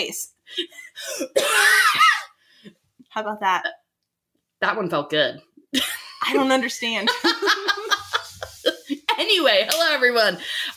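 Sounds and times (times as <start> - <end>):
speech: 0.0 - 2.0, 3.2 - 3.8, 4.6 - 8.1, 9.2 - 10.7
loud raspy strained coughs: 1.0 - 2.2.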